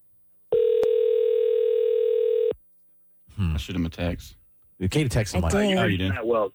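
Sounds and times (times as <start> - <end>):
telephone call ringing out: 0.5 - 2.6
speech: 3.6 - 6.5.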